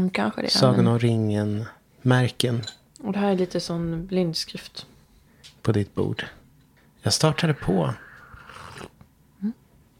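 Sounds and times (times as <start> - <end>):
speech: 0.0 - 4.9, 5.6 - 6.4, 7.0 - 8.0, 9.4 - 9.6
slurping tea: 8.0 - 9.0.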